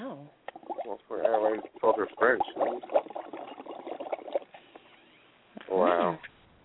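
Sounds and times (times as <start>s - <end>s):
bubbles blown through a straw into a drink: 0.5s - 4.9s
speech: 2.1s - 3.0s.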